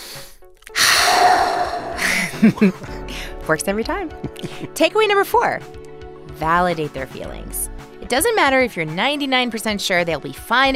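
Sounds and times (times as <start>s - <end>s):
deep belly breath drawn in slowly as a calming exercise: 0.0s - 2.4s
shorter slightly voiced exhale: 0.0s - 2.4s
laughter: 2.0s - 3.0s, 4.2s - 4.7s
speech: 2.4s - 2.9s, 3.5s - 5.8s, 6.4s - 10.7s.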